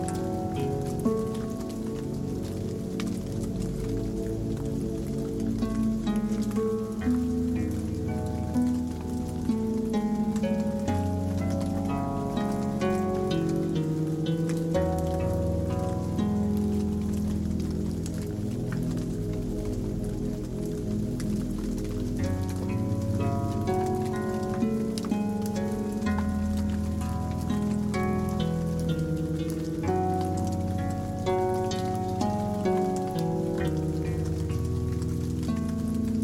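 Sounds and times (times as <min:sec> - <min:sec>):
rain pattering against a window: 0:00.0 - 0:36.2
soft slow relaxing music: 0:00.0 - 0:36.2.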